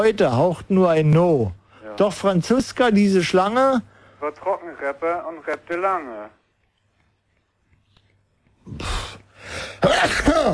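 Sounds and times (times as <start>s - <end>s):
speech: 0.0s - 6.4s, 8.7s - 10.5s
person sneezing: 8.7s - 10.5s.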